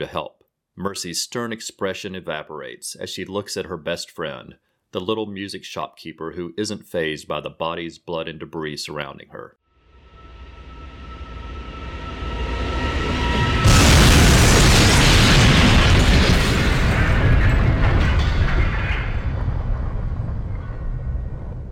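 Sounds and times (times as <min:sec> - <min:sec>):
speech: 0:00.0 - 0:09.6
single loud explosion on a train: 0:10.1 - 0:21.6.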